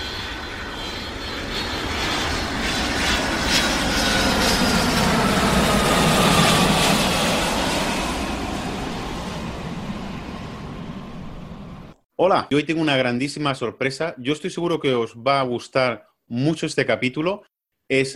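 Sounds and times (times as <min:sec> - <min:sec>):
jet airplane flying overhead: 0:00.0 - 0:12.0
speech: 0:12.2 - 0:18.1.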